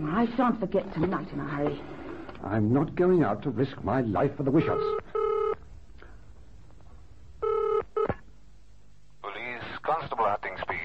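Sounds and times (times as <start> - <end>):
speech: 0.0 - 5.1
telephone dialing tone bursts: 4.8 - 5.6, 7.4 - 8.2.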